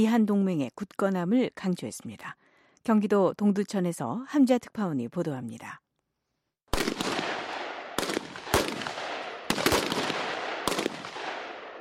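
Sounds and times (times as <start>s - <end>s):
speech: 0.0s - 5.8s
gunshots fired at an army base: 6.7s - 11.7s.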